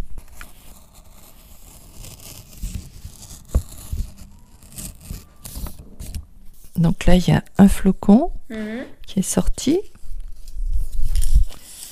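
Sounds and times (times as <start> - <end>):
quiet paper rustling: 0.0 - 6.8, 10.3 - 11.9
scissors cutting a paper snowflake: 0.3 - 6.2
speech: 6.8 - 9.9.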